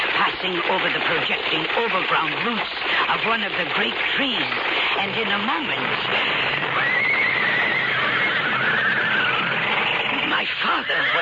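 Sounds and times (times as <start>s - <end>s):
steady noisy background: 0.0s - 11.2s
speech: 0.4s - 7.2s, 10.4s - 11.2s
panicked horse whinnying: 6.5s - 11.2s.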